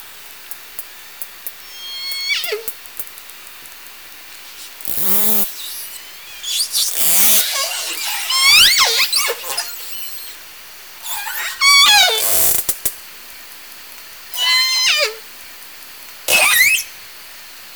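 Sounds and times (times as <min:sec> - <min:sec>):
Southern Resident killer whale calls: 0:01.7 - 0:02.7, 0:04.5 - 0:10.4, 0:11.0 - 0:12.5, 0:14.4 - 0:15.2, 0:16.3 - 0:17.0.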